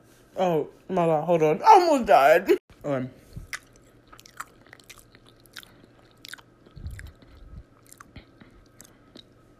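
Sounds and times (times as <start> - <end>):
speech: 0.4 - 3.2
chewing of crunchy food: 3.3 - 9.5.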